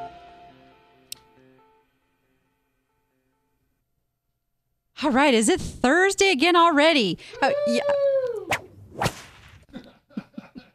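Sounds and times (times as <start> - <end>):
speech: 5.0 - 8.1
whip sound effect with whistling swish and crack: 8.5 - 9.7.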